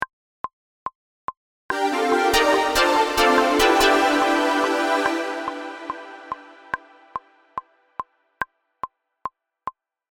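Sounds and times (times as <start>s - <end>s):
reversed intro chord: 1.7s - 7.6s.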